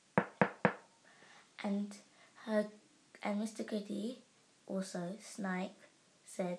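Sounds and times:
sharp knocks on a door: 0:00.2 - 0:00.8
speech: 0:01.6 - 0:06.5.

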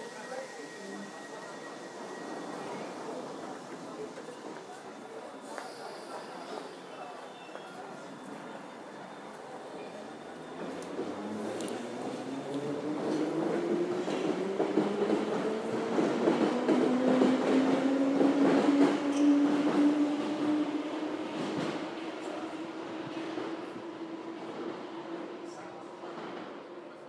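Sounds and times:
train rumble and wheel clatter at a station platform: 0:00.0 - 0:27.0.

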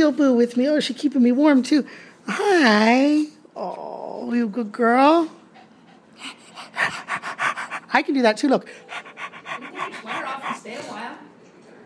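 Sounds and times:
speech: 0:00.0 - 0:05.4, 0:07.9 - 0:09.1
dog panting rapidly: 0:05.4 - 0:11.2.

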